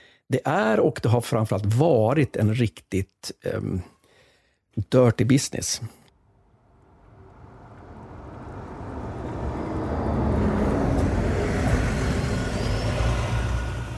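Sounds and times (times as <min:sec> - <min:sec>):
speech: 0:00.3 - 0:04.0, 0:04.8 - 0:06.0
Volkswagen van engine rumbling: 0:06.2 - 0:13.9
Volkswagen van tire noise: 0:06.2 - 0:13.9.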